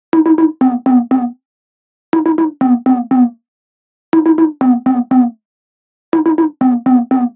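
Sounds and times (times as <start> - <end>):
synth lead: 0.1 - 1.3, 2.2 - 3.3, 4.2 - 5.3, 6.2 - 7.3.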